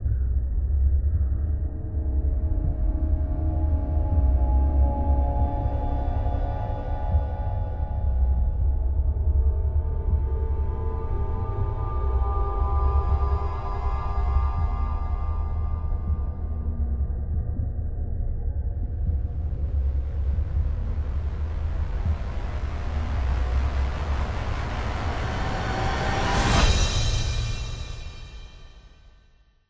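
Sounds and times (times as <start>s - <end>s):
atmospheric music for a horror scene: 0.0s - 29.0s.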